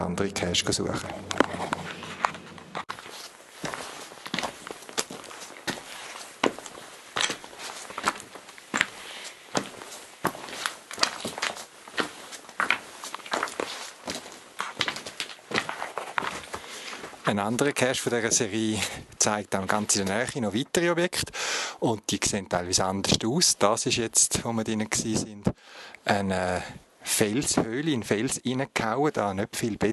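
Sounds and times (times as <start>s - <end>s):
speech: 0.0s - 1.7s, 17.3s - 29.9s
footsteps of people hiking down steep steps: 0.8s - 17.7s.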